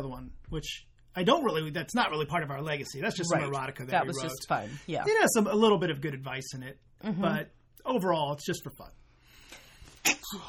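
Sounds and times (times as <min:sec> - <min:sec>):
speech: 0:00.0 - 0:09.0, 0:10.0 - 0:10.4
person sneezing: 0:09.9 - 0:10.4.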